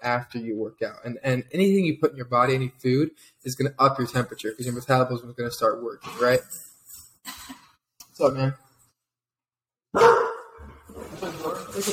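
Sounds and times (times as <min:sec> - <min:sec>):
speech: 0:00.0 - 0:07.6, 0:08.2 - 0:08.6, 0:09.9 - 0:10.2, 0:11.8 - 0:11.9
dog barking: 0:09.9 - 0:10.7.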